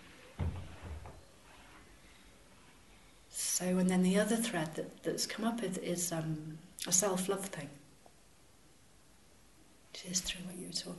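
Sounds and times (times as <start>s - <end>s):
soft knocks: 0.4s - 1.2s
speech: 3.6s - 7.8s, 10.0s - 10.9s.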